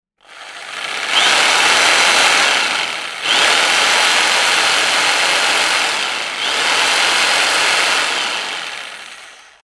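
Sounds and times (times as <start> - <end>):
electric jigsaw: 0.2 - 9.6.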